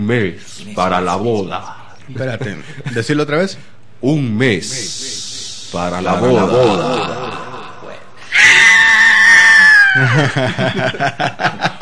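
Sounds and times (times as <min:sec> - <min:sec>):
speech: 0:00.0 - 0:07.2, 0:10.0 - 0:11.8
laughter: 0:06.0 - 0:08.0, 0:09.8 - 0:11.8
recorded high-pitched scream: 0:08.2 - 0:10.3.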